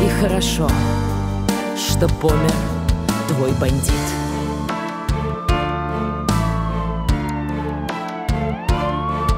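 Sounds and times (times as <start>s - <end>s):
speech: 0.2s - 1.1s, 1.8s - 4.2s
police siren wailing with rising and falling tones: 4.1s - 9.3s.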